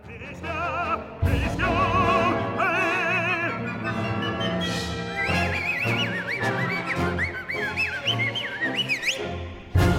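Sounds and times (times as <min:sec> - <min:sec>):
vibrato-heavy operatic singing voice: 0:00.0 - 0:04.7
full orchestra in an opera aria recording: 0:00.0 - 0:09.9
shrill sliding whistles: 0:03.8 - 0:09.5.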